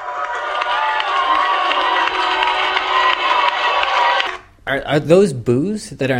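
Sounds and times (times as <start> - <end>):
occasional whoops from the crowd: 0.0 - 4.4
scattered applause: 0.0 - 4.4
large crowd cheering: 0.0 - 4.5
speech: 4.7 - 6.1.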